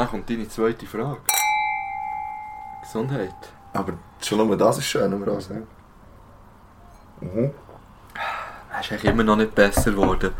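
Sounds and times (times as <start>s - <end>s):
speech: 0.0s - 1.4s, 2.9s - 5.8s, 7.2s - 7.6s, 8.8s - 10.3s
wine glasses clinking in a toast: 1.3s - 4.7s, 6.9s - 7.2s.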